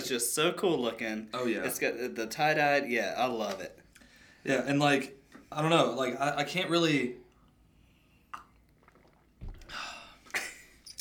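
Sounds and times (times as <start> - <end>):
speech: 0.1 - 3.8, 4.4 - 7.2
wet slurping sip of beer: 8.0 - 11.0
swallow: 8.2 - 11.0.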